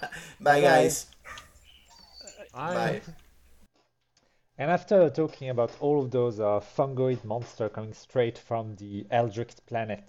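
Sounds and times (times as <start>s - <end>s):
speech: 0.4s - 1.1s, 2.6s - 3.2s, 4.6s - 10.0s
dog barking excitedly: 1.2s - 1.6s.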